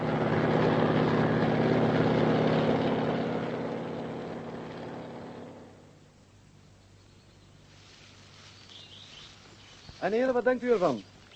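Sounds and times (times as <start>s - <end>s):
aircraft propeller engine droning while coming in to land: 0.0s - 6.0s
speech: 10.0s - 11.1s.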